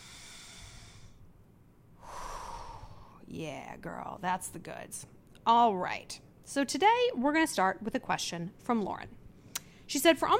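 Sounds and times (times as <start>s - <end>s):
deep breath in and out during a guided breathing exercise: 0.0s - 1.3s, 2.0s - 3.2s
speech: 3.3s - 9.2s, 9.9s - 10.3s.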